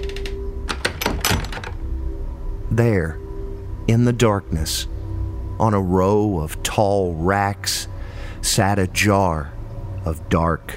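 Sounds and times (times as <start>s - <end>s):
heavy cellar doors being lowered shut: 0.0s - 2.0s
low hum: 0.0s - 10.7s
speech: 2.8s - 3.2s, 3.9s - 5.0s, 5.6s - 10.7s.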